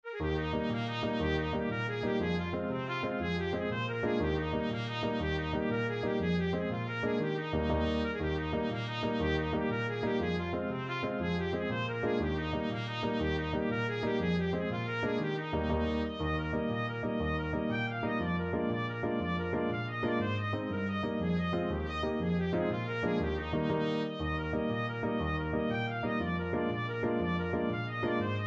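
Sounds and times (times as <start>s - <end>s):
Irish jig medley on trumpet: 0.0s - 28.4s.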